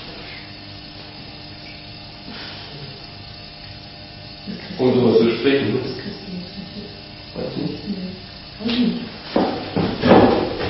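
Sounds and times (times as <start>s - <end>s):
speech: 4.8s - 6.1s
chair knocking and thumping: 8.8s - 10.6s.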